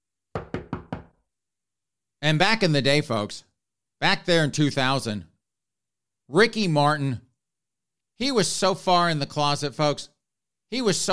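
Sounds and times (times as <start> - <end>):
knocking on a door: 0.4 - 1.2
speech: 2.2 - 5.3, 6.3 - 7.3, 8.2 - 10.1, 10.7 - 11.1.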